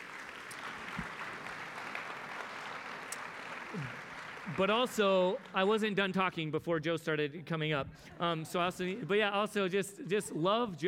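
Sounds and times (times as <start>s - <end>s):
audience applause: 0.0s - 6.0s
speech: 3.7s - 10.8s.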